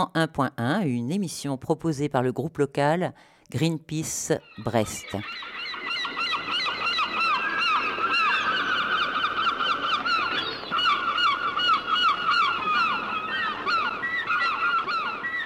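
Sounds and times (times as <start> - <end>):
speech: 0.0 - 5.5
dense chorus of seagulls crying: 4.4 - 15.4.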